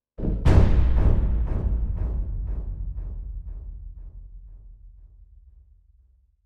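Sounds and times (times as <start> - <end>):
boom with delayed fade: 0.2 - 2.5
single cello stab stinger: 0.2 - 4.9.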